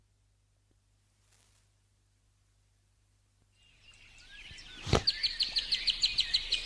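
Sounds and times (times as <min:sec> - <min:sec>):
birds twittering softly: 0:03.4 - 0:06.6.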